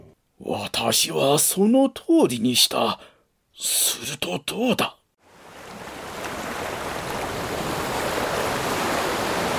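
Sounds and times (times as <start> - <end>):
speech: 0.4 - 5.0
roar of rushing crashing water from collapsing sea walls: 5.2 - 9.5.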